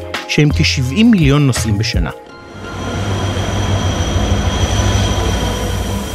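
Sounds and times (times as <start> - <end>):
speech: 0.4 - 2.8
passenger train pulling into Ashkelon railway station in Israel: 2.3 - 6.1.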